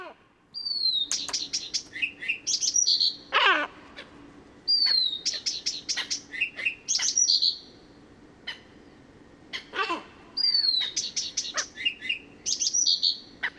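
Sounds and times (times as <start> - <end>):
Blyth's Reed Warbler song: 0.6 - 3.3, 4.6 - 7.9, 10.4 - 13.4.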